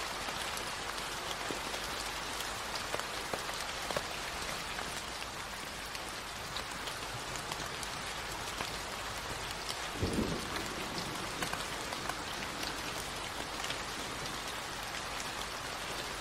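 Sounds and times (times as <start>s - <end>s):
rain falling in a forest: 0.0s - 16.1s.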